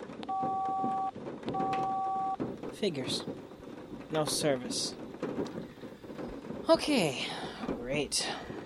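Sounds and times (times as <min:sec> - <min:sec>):
cell phone keypad tones: 0:00.3 - 0:02.4
speech: 0:02.8 - 0:03.4, 0:04.1 - 0:05.7, 0:06.7 - 0:08.5.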